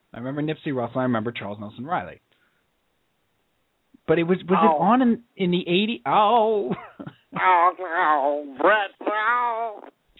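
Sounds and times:
speech: 0.2 - 2.3, 4.1 - 9.9
person yowling like a startled cat: 7.4 - 9.9.

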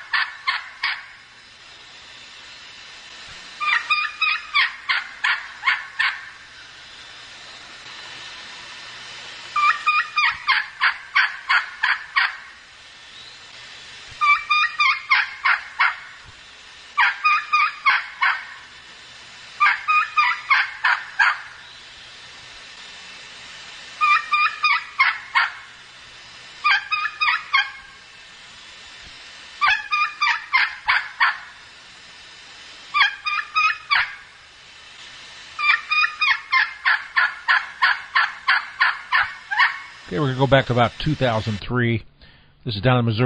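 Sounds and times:
young wild turkey hen kee-kee runs and yelps: 3.6 - 6.2, 9.6 - 12.4, 14.2 - 16.1, 17.0 - 18.5, 19.6 - 21.5, 24.0 - 25.6, 26.6 - 27.8, 29.6 - 31.4, 33.0 - 34.2, 35.6 - 39.9
speech: 40.1 - 43.2.

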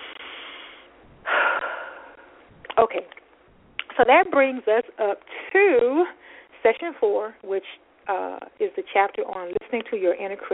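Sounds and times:
person taking a deep breath: 0.0 - 2.4, 6.2 - 6.5
speech: 2.8 - 3.2, 4.0 - 10.5.

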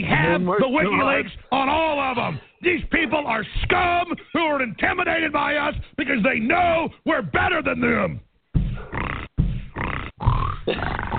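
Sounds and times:
speech: 0.3 - 9.0, 10.6 - 11.1
man making guttural snorting grunts imitating a pig: 8.6 - 11.1.

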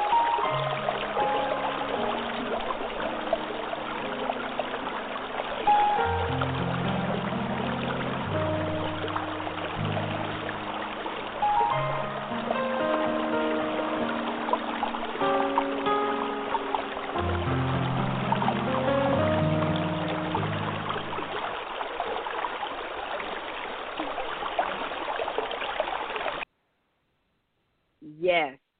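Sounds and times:
low melodic music bed: 0.0 - 21.7
flowing river water rushing: 0.0 - 26.4.

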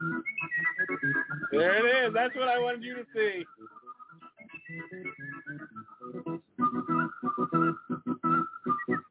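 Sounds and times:
person whistling a tune: 0.0 - 1.7, 3.5 - 9.0
busy rhythmic lower backing sound: 0.0 - 9.0
speech: 1.6 - 3.6.

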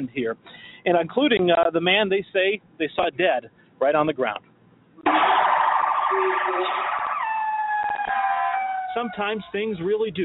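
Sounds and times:
speech: 0.0 - 4.5, 6.1 - 7.0, 9.0 - 10.2
Albuquerque police siren wailing: 5.0 - 9.6.

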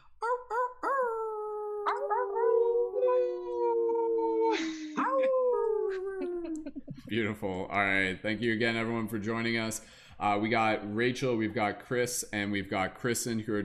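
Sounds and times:
people imitating wolf howls on an online broadcast: 0.2 - 6.6
speech: 7.1 - 13.6.

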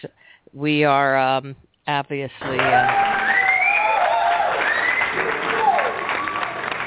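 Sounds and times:
speech: 0.0 - 3.3
large crowd of football fans cheering and screaming celebrating a victory: 2.6 - 6.8
shrill whoops and shouts of football fans: 2.6 - 6.8.

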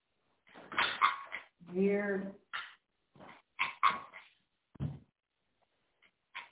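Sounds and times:
coyotes yipping and barking: 0.5 - 1.6, 2.5 - 4.4, 6.3 - 6.5
speech: 1.7 - 2.4.

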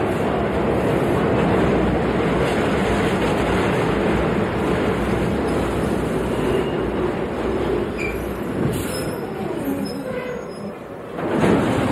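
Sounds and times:
subway train rumbling: 0.0 - 11.8.

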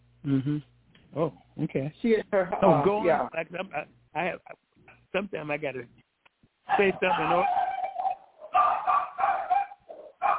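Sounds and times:
speech: 0.2 - 6.0, 6.7 - 7.6
dog barking in short high-pitched yaps: 6.7 - 10.3.

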